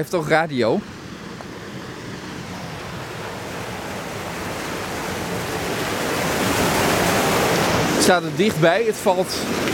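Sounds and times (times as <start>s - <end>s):
speech: 0.0s - 1.0s, 8.0s - 9.7s
waterfall in a city park rushing: 0.8s - 9.7s.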